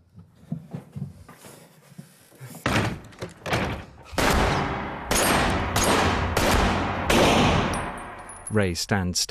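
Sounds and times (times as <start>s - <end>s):
burst of loud gunshots: 4.2s - 8.0s
speech: 8.5s - 9.2s.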